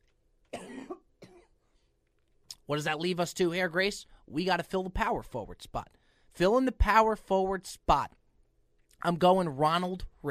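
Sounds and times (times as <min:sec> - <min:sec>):
person coughing: 0:00.5 - 0:01.6
speech: 0:02.7 - 0:08.2, 0:09.0 - 0:10.2.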